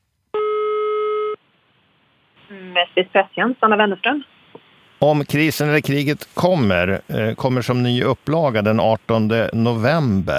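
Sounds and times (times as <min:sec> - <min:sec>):
telephone ringback tone while a call is placed: 0:00.4 - 0:01.4
speech: 0:02.8 - 0:04.4, 0:05.0 - 0:10.3.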